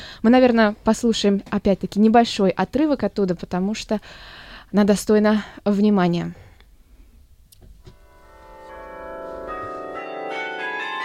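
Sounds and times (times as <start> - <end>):
speech: 0.2 - 6.4
carillon bells ringing: 8.0 - 11.0.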